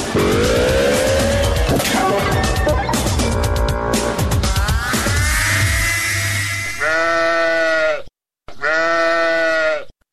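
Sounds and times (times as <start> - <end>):
noisy cluttered sound: 0.1 - 6.5
sheep bought for sacrifice bleating: 6.6 - 9.9.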